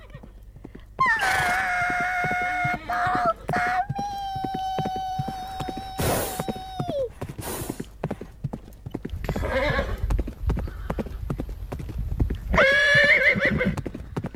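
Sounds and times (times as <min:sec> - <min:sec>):
rumble of galloping horse hooves: 0:00.0 - 0:14.3
horses neighing and whinnying: 0:01.0 - 0:07.8, 0:09.2 - 0:11.2, 0:12.5 - 0:14.2.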